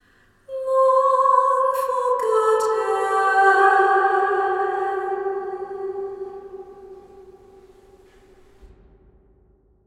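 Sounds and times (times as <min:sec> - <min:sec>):
woman singing: 0:00.5 - 0:07.4.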